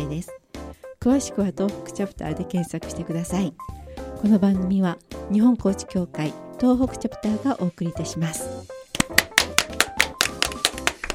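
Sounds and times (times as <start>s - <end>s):
speech: 0.1s - 0.4s, 1.0s - 9.2s
hand clapping: 8.9s - 11.1s.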